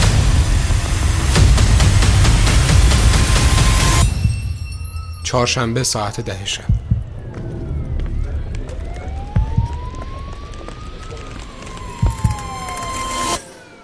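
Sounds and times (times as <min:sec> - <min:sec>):
steady low street rumble: 0:00.0 - 0:13.8
ambulance siren wailing: 0:05.1 - 0:13.8
speech: 0:05.3 - 0:06.8.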